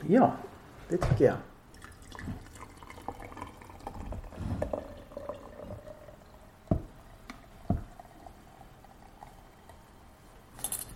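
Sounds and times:
speech: 0:00.1 - 0:01.5
hot water pouring over tea leaves in a pot: 0:01.7 - 0:09.9.

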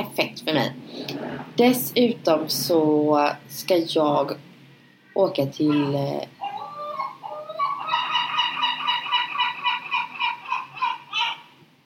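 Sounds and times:
speech: 0:00.4 - 0:04.5, 0:05.2 - 0:06.4
gull calling with cries, yelping notes and squawk: 0:05.6 - 0:11.6.

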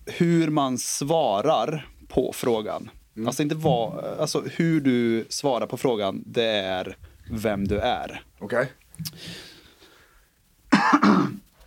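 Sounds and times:
speech: 0:00.2 - 0:09.5
harsh coughs: 0:10.7 - 0:11.5.

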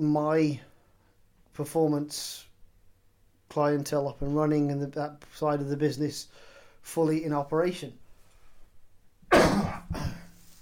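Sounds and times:
speech: 0:00.0 - 0:00.7, 0:01.6 - 0:02.5, 0:03.5 - 0:08.0
person clearing throat: 0:09.3 - 0:10.4
person coughing: 0:09.3 - 0:10.4.

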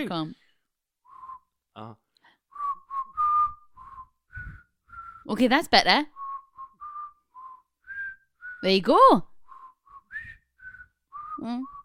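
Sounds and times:
speech: 0:00.0 - 0:00.4, 0:01.8 - 0:02.0, 0:05.3 - 0:06.2, 0:08.6 - 0:09.3, 0:11.4 - 0:11.8
person whistling a short wavering tune: 0:01.1 - 0:01.6, 0:02.5 - 0:05.3, 0:06.1 - 0:08.7, 0:09.4 - 0:11.8.

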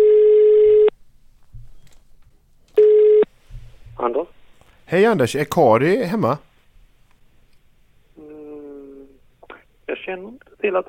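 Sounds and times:
phone line ringback tone through an earpiece on an outgoing call: 0:00.0 - 0:00.9, 0:02.8 - 0:03.3
speech: 0:04.9 - 0:06.5, 0:10.6 - 0:10.8.

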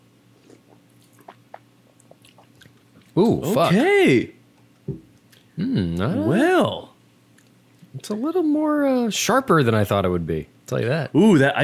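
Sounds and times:
low steady hum: 0:00.0 - 0:11.6
person sipping a cocktail: 0:00.4 - 0:03.2
speech: 0:03.2 - 0:04.4, 0:05.6 - 0:06.8, 0:08.0 - 0:11.6.

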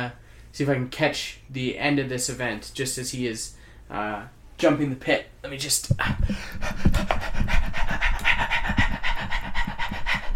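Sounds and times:
speech: 0:00.0 - 0:08.2
person panting out of breath after running: 0:06.0 - 0:10.3.

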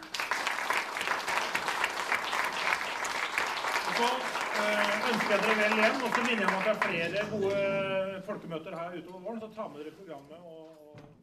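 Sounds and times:
room full of people clapping: 0:00.0 - 0:08.2
speech: 0:04.0 - 0:10.6.

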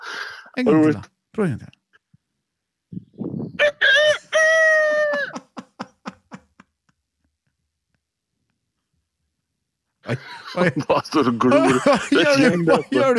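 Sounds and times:
speech: 0:00.6 - 0:01.8, 0:10.1 - 0:13.1
man imitating a rooster crowing: 0:03.6 - 0:05.4
laughter: 0:04.8 - 0:06.9, 0:10.0 - 0:13.1.

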